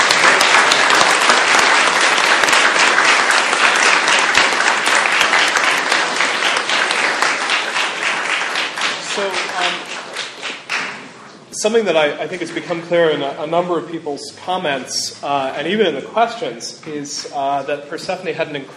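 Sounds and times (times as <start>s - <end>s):
audience applause: 0.0s - 11.0s
speech: 11.6s - 18.7s.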